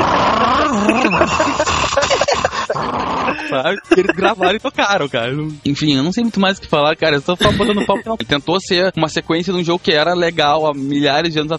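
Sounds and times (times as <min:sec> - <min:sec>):
laughter: 0:00.6 - 0:04.6, 0:07.4 - 0:08.2
human voice imitating a car engine as a video game sound effect: 0:03.2 - 0:04.6, 0:07.4 - 0:08.2
speech: 0:03.5 - 0:11.5.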